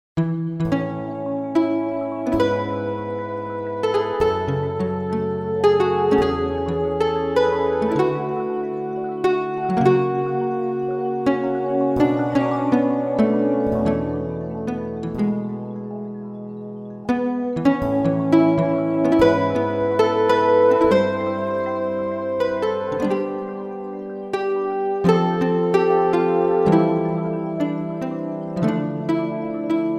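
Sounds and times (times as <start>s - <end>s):
nylon string guitar: 0.2s - 29.9s.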